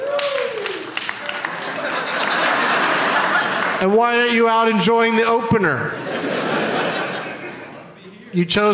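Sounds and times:
people whooping: 0.0s - 2.2s
audience of deer hunters clapping: 0.0s - 4.3s
laughter: 1.2s - 4.1s, 5.8s - 8.1s
speech: 3.8s - 6.4s, 8.3s - 8.7s.

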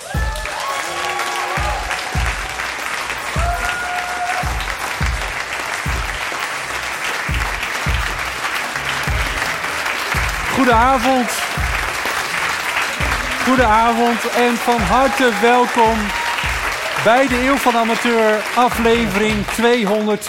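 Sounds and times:
audience applause: 0.0s - 20.2s
cheers: 0.0s - 20.2s
speech: 10.6s - 11.4s, 13.5s - 16.2s, 17.0s - 20.2s.

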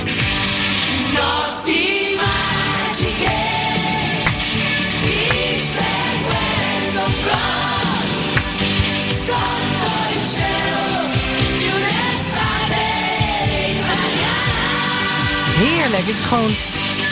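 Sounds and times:
Italian pop anthem with male-female duet vocals over full band: 0.9s - 17.0s
speech: 16.1s - 16.8s.

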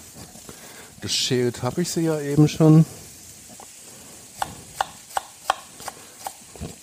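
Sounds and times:
speech: 1.0s - 3.0s
knife slicing small shallots into thin strips: 4.4s - 6.8s.

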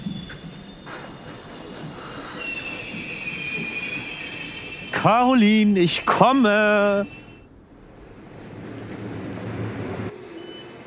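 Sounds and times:
train wheels squealing through a station: 0.0s - 7.5s
steady low rumble of a train pulling through a station: 0.0s - 10.8s
speech: 5.0s - 7.2s.

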